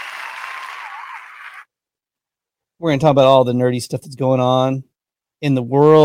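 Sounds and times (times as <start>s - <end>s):
crowd applause: 0.0s - 1.6s
speech: 2.8s - 6.0s.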